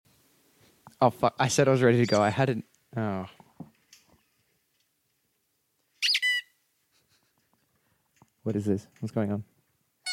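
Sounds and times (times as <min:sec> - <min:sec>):
speech: 0:01.0 - 0:03.4, 0:08.5 - 0:09.5
squeaky toy squeaks: 0:06.0 - 0:06.6.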